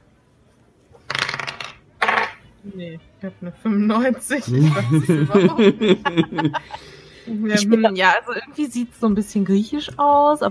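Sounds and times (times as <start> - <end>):
dice clattering and rattling: 1.1 - 2.4
speech: 2.6 - 10.4
laughter: 4.5 - 7.0.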